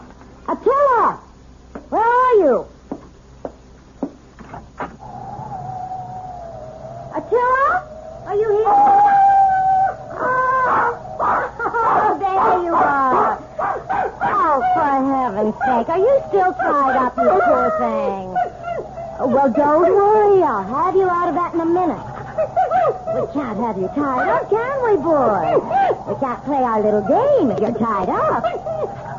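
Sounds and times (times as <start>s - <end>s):
speech: 0.5s - 1.3s, 2.4s - 2.7s, 15.9s - 18.4s, 19.2s - 22.1s, 23.1s - 28.6s
male dog whimpering and howling: 5.0s - 29.1s.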